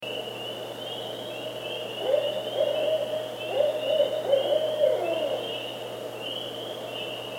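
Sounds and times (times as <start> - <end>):
Northern Barred Owl hooting: 1.9 - 6.8.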